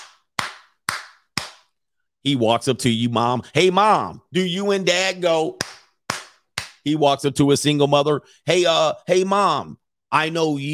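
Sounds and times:
sharp loud hand claps: 0:00.0 - 0:01.8, 0:05.5 - 0:06.8
speech: 0:02.2 - 0:05.8, 0:06.8 - 0:10.7.

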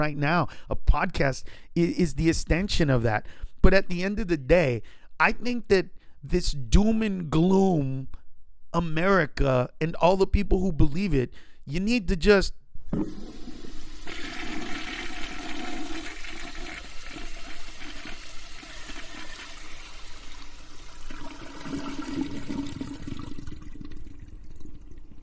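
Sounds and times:
speech: 0:00.0 - 0:13.4
toilet flushing: 0:12.9 - 0:25.2.

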